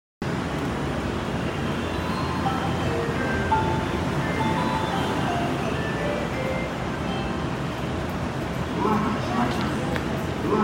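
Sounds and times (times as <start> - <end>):
train departing Morinomiya: 0.2 - 10.6.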